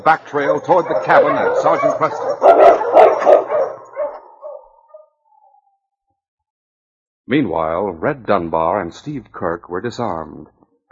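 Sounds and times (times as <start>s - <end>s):
speech: 0.0s - 3.6s, 7.3s - 10.9s
sled dog team barking: 0.2s - 5.6s.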